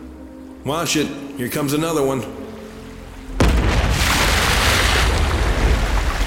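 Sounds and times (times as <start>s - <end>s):
speech: 0.6s - 2.4s
deep boom: 3.4s - 6.0s.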